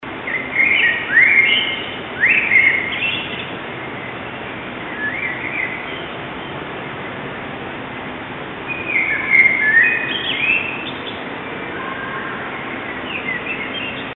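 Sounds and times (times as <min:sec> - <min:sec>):
blackbird in a field: 0:00.2 - 0:04.2, 0:04.8 - 0:06.5, 0:08.7 - 0:14.1.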